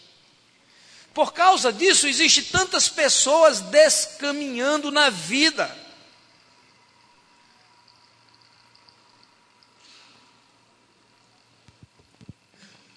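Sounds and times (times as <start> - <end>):
speech: 1.2 - 5.9
water draining from a baptismal tank: 6.4 - 10.3.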